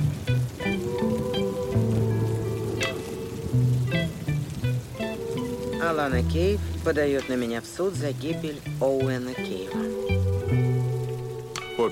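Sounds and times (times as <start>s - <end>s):
low musical tones: 0.0s - 11.9s
rain falling: 0.0s - 11.9s
speech: 5.9s - 10.7s.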